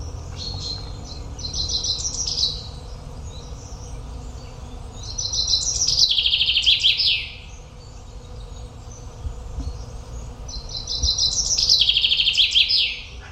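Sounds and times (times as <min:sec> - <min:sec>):
common chaffinch song: 0:00.0 - 0:13.3.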